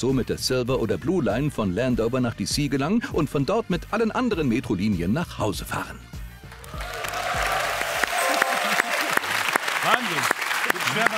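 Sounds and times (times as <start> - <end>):
speech: 0.0 - 6.1, 10.1 - 11.1
crowd applauding: 6.5 - 11.1.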